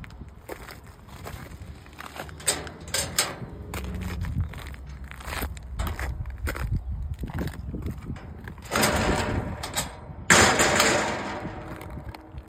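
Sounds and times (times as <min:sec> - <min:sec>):
gates: 0:01.9 - 0:06.6, 0:08.1 - 0:12.4.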